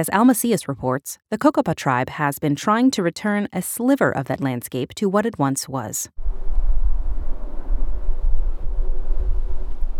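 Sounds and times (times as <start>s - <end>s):
speech: 0.0s - 6.5s
low rumble of wind buffeting the microphone: 6.2s - 9.9s.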